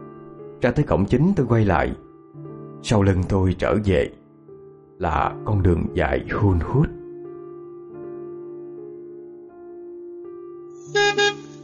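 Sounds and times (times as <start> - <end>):
speech: 0.6 - 2.0, 2.8 - 4.2, 5.0 - 6.9
passing timber truck horn honks: 10.9 - 11.6.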